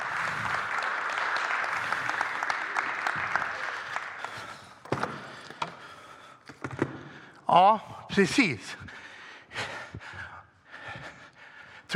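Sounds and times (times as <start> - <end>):
crowd applauding: 0.0 - 5.3
speech: 7.5 - 8.8.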